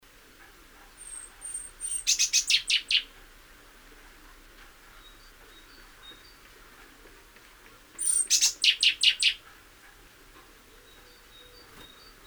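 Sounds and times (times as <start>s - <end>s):
great tit Parus major chattering calls: 1.0s - 3.2s, 8.0s - 9.4s, 10.8s - 12.2s.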